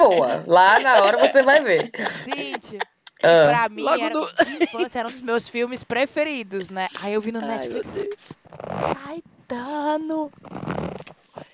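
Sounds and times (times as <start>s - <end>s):
laughter: 0.0s - 3.4s, 4.2s - 5.2s
speech: 0.1s - 10.8s
person wiping a runny nose after crying: 10.4s - 11.5s.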